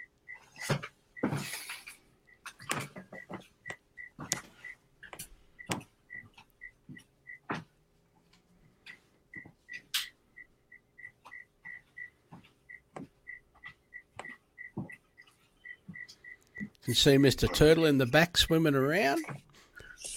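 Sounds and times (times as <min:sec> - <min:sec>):
cricket chirping indoors: 0:00.0 - 0:04.8, 0:05.6 - 0:07.4, 0:09.3 - 0:17.9
speech: 0:16.9 - 0:19.4.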